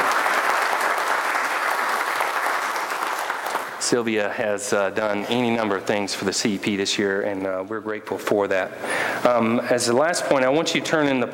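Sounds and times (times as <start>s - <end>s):
audience applause: 0.0s - 4.0s
speech: 3.8s - 11.3s.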